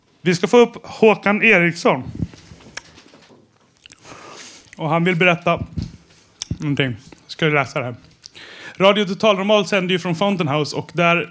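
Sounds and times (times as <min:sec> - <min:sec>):
speech: 0:00.2 - 0:02.2, 0:04.8 - 0:05.8, 0:06.6 - 0:11.2
chewing food: 0:02.2 - 0:04.9, 0:05.6 - 0:07.4, 0:08.0 - 0:08.6
wet mouth clicks: 0:02.6 - 0:03.0, 0:03.7 - 0:04.9, 0:06.2 - 0:07.3, 0:08.1 - 0:08.6
crisp bites: 0:03.6 - 0:04.9, 0:08.1 - 0:08.5.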